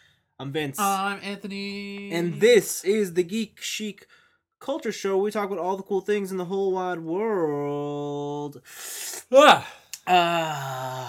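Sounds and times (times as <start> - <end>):
speech: 0.4 - 11.0
person yawning: 9.4 - 11.0.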